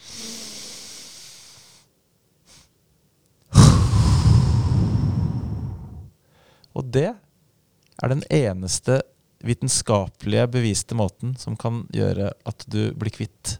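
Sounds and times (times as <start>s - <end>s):
person demonstrating a breathing technique for a side stitch: 0.0s - 1.6s, 3.5s - 6.1s
speech: 6.8s - 7.2s, 8.0s - 13.5s.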